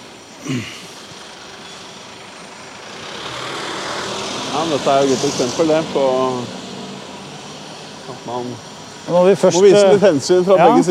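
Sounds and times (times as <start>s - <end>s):
car engine and tyre noise on a narrow road: 0.0s - 10.9s
speech: 0.4s - 0.9s, 4.6s - 6.6s, 8.1s - 10.9s.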